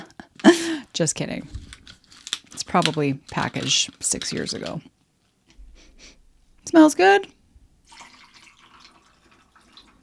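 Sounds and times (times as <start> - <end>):
speech: 0.4 - 1.7, 2.7 - 4.9, 6.0 - 7.4
pineapple juice pouring into a mixing glass: 7.8 - 10.0.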